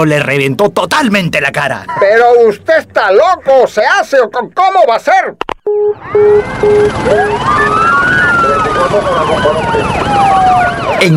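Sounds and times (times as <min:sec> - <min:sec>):
speech: 0:00.0 - 0:08.2, 0:08.8 - 0:11.1
police car sirens wailing: 0:05.7 - 0:11.1.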